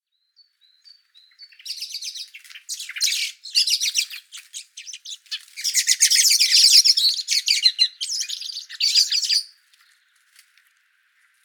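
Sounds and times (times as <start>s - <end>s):
common blackbird Turdus merula chattering calls: 1.4s - 9.5s.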